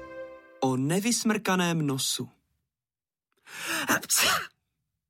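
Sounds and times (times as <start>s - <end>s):
speech: 0.7s - 2.4s, 3.5s - 4.5s
person sneezing: 3.6s - 4.6s.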